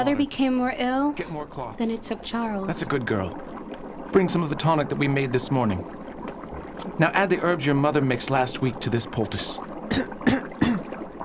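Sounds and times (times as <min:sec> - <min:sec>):
speech: 0:00.0 - 0:06.0, 0:06.8 - 0:10.7
faint continuous hiss: 0:00.0 - 0:11.2
throaty coughs: 0:09.9 - 0:11.0.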